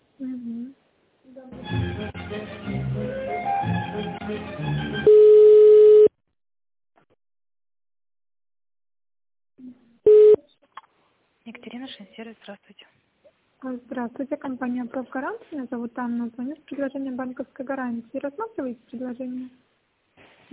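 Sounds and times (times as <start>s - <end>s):
telephone beeps as a call is transferred: 5.1s - 6.1s, 10.1s - 10.4s
speech: 12.2s - 19.7s.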